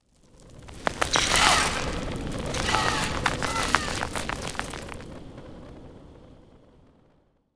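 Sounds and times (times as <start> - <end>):
rock creature sounds: 1.0 - 5.0.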